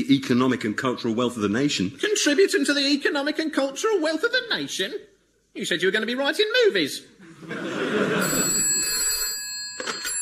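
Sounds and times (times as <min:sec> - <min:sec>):
speech: 0:00.1 - 0:08.0
laughter: 0:07.2 - 0:09.0
telephone ringing with an electronic tone: 0:08.0 - 0:10.2.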